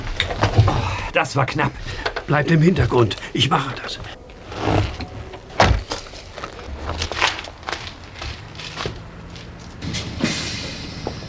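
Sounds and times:
bus rear door rattling and sliding: 0:00.0 - 0:11.2
speech: 0:01.2 - 0:04.2
bus rear door opening with a pneumatic hiss: 0:09.8 - 0:11.2.

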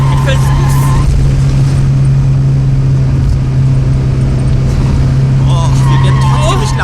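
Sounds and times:
voices: 0:00.0 - 0:01.0, 0:05.4 - 0:06.8
car engine roaring while downshifting: 0:00.0 - 0:06.8.

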